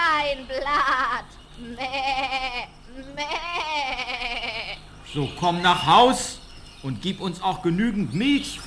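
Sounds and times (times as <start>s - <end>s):
speech: 0.3s - 4.3s, 5.1s - 8.6s
goat bleating: 1.5s - 4.9s.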